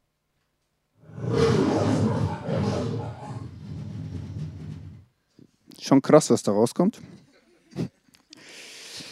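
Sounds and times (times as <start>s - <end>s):
lion roaring: 1.0s - 5.1s
speech: 5.8s - 7.2s.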